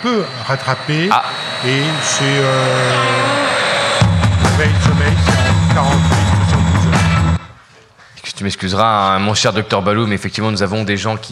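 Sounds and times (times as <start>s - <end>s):
speech: 0.0s - 3.4s, 4.6s - 6.2s, 8.4s - 11.2s
deep rumbling layers: 0.0s - 7.5s
loud jet airplane roar with a high whine: 0.0s - 7.6s
pulsing bursts: 0.0s - 7.6s.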